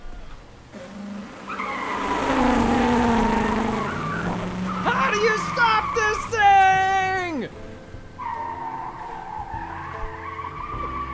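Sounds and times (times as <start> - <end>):
low car engine rumble: 0.6 - 8.0
car tire screech while skidding: 0.8 - 11.1.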